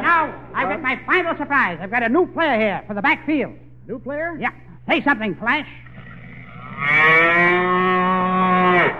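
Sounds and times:
speech: 0.2 - 5.9, 6.8 - 7.9
cow mooing: 5.7 - 8.9.

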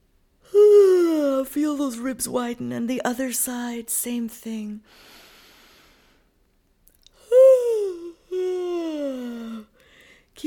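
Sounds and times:
speech: 1.5 - 5.2
person yawning while stretching: 7.2 - 9.7.

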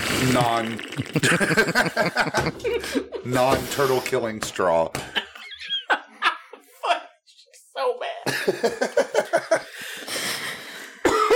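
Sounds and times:
speech: 0.2 - 5.3, 8.5 - 10.1
laughter: 1.1 - 3.3, 8.3 - 9.8
raspy breathing: 9.6 - 11.1
dry coughing: 11.0 - 11.3.

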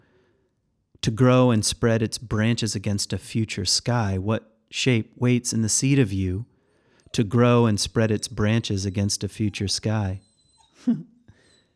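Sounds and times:
speech: 1.0 - 6.5, 7.1 - 11.1
puppy whining: 7.0 - 11.7.

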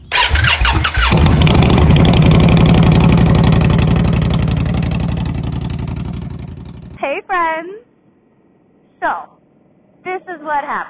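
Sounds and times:
motorcycle engine cranking and idling as a ride begins: 0.0 - 7.0.

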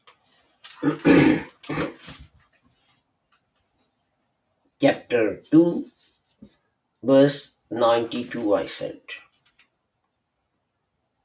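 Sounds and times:
rough coughs: 0.8 - 2.0
throat-clearing bursts: 0.8 - 2.1
speech: 0.8 - 2.2, 5.1 - 9.2.

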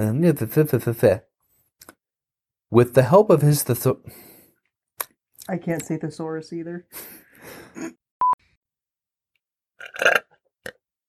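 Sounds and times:
speech: 0.0 - 2.0, 2.7 - 4.3, 5.5 - 8.0, 10.0 - 10.2
man belching: 9.8 - 10.4.

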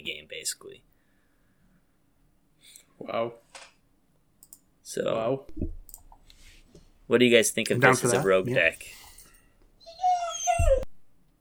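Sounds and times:
speech: 3.0 - 3.4, 4.9 - 5.8, 7.1 - 9.0
brief low thump: 5.5 - 5.8
dog whimpering: 9.8 - 10.9.

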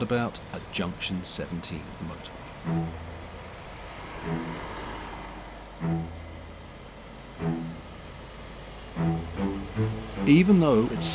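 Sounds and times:
speech: 0.0 - 3.1, 4.2 - 4.8, 5.8 - 6.2, 7.4 - 7.7, 10.3 - 11.1
HGV lorry engines starting up in a lorry park beside a motorway: 0.1 - 11.1.

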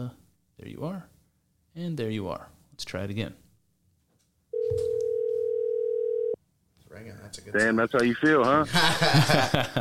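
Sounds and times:
speech: 0.0 - 1.1, 1.8 - 3.4, 7.0 - 9.7
telephone dial tone while calling back: 4.6 - 6.4
laughter: 8.2 - 9.7.

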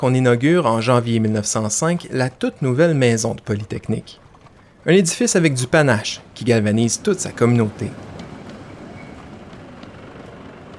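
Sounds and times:
speech: 0.0 - 4.2, 4.8 - 8.1
electric streetcar rolling along rails in Montreal: 0.0 - 10.7
faint metallic clicks and squeaks: 1.7 - 4.8, 8.1 - 9.6.

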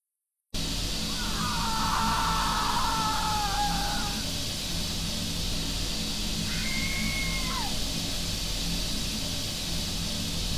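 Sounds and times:
steady hiss: 0.6 - 10.5
wailing screams on basement stairs: 1.0 - 4.4, 6.4 - 7.9.

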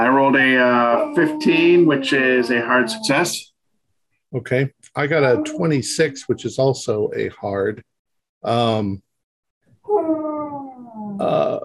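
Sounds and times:
dog whining: 0.0 - 3.4, 5.0 - 6.2, 9.9 - 11.6
speech: 0.0 - 3.5, 4.3 - 9.1, 9.8 - 10.2, 11.2 - 11.6.

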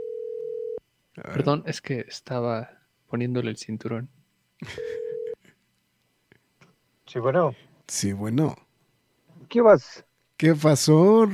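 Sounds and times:
outgoing telephone call ring-back tone: 0.0 - 0.8, 4.8 - 5.4
speech: 1.2 - 5.0, 7.1 - 8.6, 9.5 - 11.3.

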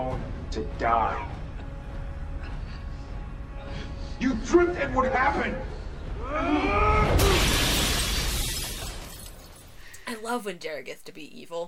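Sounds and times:
speech: 0.5 - 1.4, 4.2 - 7.5, 10.1 - 11.6
mirror smashing into shattering glass: 7.1 - 9.8.

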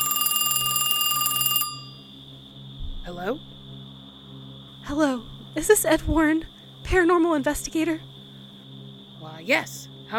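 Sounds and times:
telephone bell ringing: 0.0 - 2.1
speech: 3.1 - 3.6, 4.8 - 8.1, 9.4 - 10.1.

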